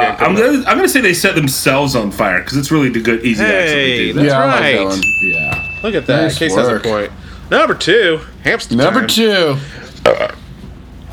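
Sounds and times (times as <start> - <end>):
speech: 0.1 - 10.4
person burping: 10.0 - 10.4.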